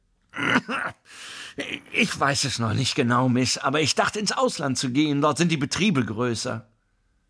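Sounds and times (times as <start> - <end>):
person coughing: 0.3 - 2.2
speech: 0.4 - 6.7.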